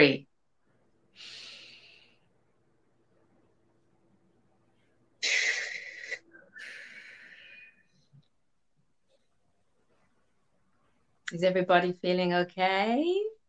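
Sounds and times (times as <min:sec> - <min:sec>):
speech: 0:00.0 - 0:00.3, 0:11.3 - 0:13.4
slow deep breathing during a guided breathing exercise: 0:06.4 - 0:08.1.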